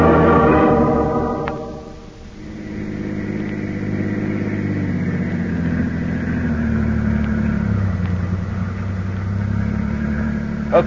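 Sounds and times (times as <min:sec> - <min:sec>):
car engine humming inside moving vehicle: 0:00.0 - 0:10.8
road noise: 0:00.0 - 0:10.8.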